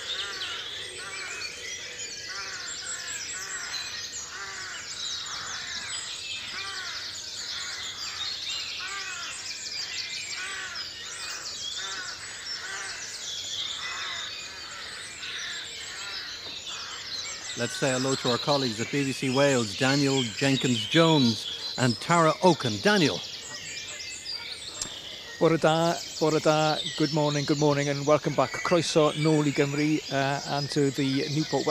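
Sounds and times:
dense dawn chorus of many birds singing: 0.0 - 31.6
speech: 17.6 - 23.3, 25.4 - 31.6.

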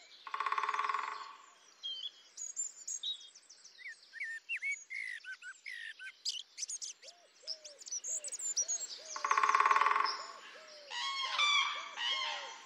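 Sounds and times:
harsh noisy bird calls: 0.0 - 1.5, 4.2 - 12.6
chorus of several birds chirping, whistling and trilling: 0.0 - 12.6.

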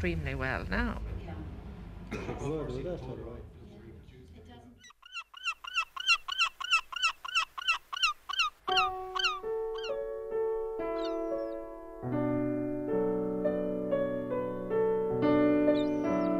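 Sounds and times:
speech: 0.0 - 1.1, 2.1 - 3.6
noise: 0.0 - 15.3
seabirds calling: 4.8 - 11.9, 15.3 - 16.3.

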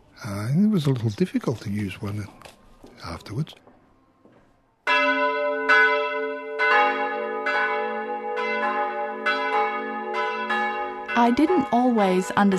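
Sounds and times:
speech: 0.2 - 3.7, 11.2 - 12.5
church bell ringing: 4.9 - 12.5.

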